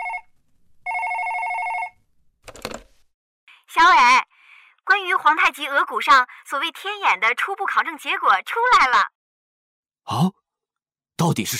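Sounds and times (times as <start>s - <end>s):
electronic telephone ringing: 0.0s - 0.3s, 0.9s - 2.0s
clattering noise: 2.4s - 3.0s
speech: 3.7s - 4.1s, 5.2s - 9.2s, 10.1s - 10.4s, 11.2s - 11.5s.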